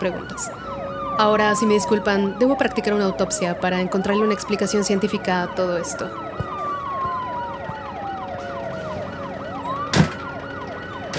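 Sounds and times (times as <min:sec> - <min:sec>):
speech: 0:00.0 - 0:06.5
ambulance siren wailing in rising and falling sweeps: 0:00.0 - 0:11.1.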